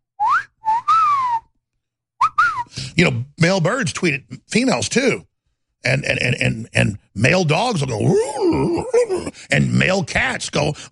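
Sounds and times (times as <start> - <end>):
loud human wolf whistle: 0.2 - 1.6, 2.2 - 2.8
speech: 3.0 - 10.9.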